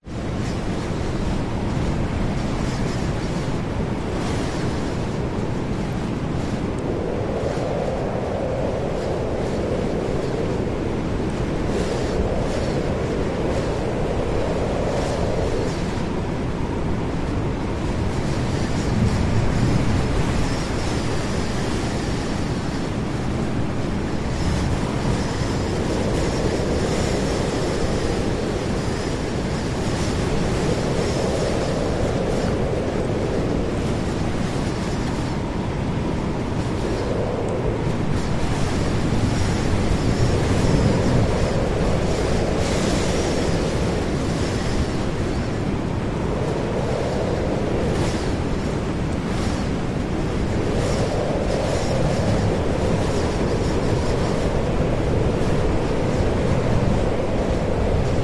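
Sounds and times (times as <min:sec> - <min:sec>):
hurricane wind very strong howling: 0:00.0 - 0:58.2.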